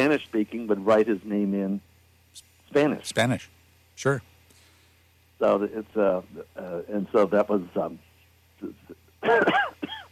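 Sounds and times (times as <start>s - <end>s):
speech: 0.0s - 4.3s, 5.4s - 9.7s
person clearing throat: 8.7s - 10.0s
person coughing: 9.2s - 10.0s.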